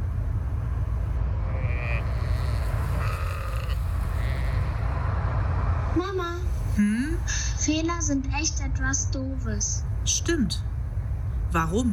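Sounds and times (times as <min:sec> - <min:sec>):
road noise from inside a moving car with a window open: 0:00.0 - 0:11.9
sheep bleating: 0:01.5 - 0:04.9
speech: 0:06.0 - 0:10.7, 0:11.5 - 0:11.9.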